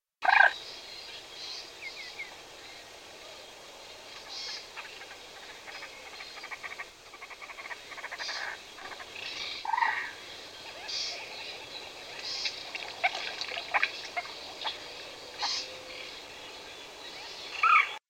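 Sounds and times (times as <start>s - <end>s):
common moorhen calling: 4.2s - 18.0s.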